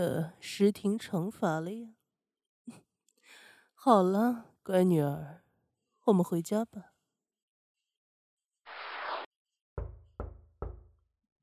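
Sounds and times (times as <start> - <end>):
speech: 0.0 - 2.0, 3.8 - 5.4, 6.1 - 6.9
hissing noise: 8.7 - 9.3
knocking on a wooden door: 9.8 - 11.0.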